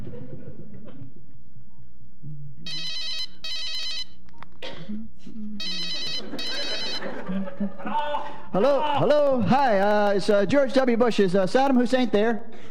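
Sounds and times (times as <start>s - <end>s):
laughter: 0.0s - 1.2s, 6.0s - 9.1s
telephone ringing on an outgoing call: 2.7s - 4.2s, 5.6s - 7.6s
speech: 8.5s - 12.7s.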